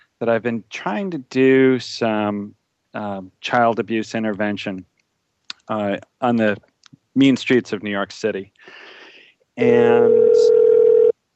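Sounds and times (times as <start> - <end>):
speech: 0.2 - 4.9, 5.7 - 8.9, 9.6 - 10.6
electronic telephone ringing: 9.9 - 11.1.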